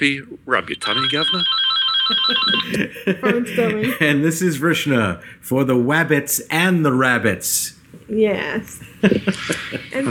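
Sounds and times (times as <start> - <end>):
speech: 0.0 - 10.1
telephone ringing with electronic warble: 0.8 - 2.8
laughter: 2.1 - 4.4, 8.9 - 10.1.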